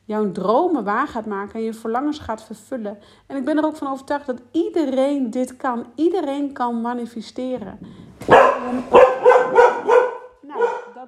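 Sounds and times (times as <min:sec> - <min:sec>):
speech: 0:00.1 - 0:09.2
dog barking: 0:08.2 - 0:11.0.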